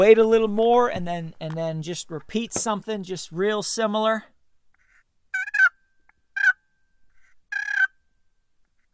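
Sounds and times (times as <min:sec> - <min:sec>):
speech: 0:00.0 - 0:04.3
sharp single clucks made on a turkey call: 0:05.4 - 0:05.7, 0:06.4 - 0:06.6, 0:07.5 - 0:07.9.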